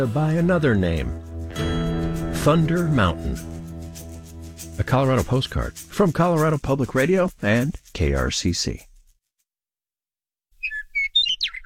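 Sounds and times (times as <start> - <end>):
speech: 0.0 - 1.3, 2.4 - 3.6, 4.8 - 8.9
western meadowlark song: 0.0 - 8.8, 10.6 - 11.6.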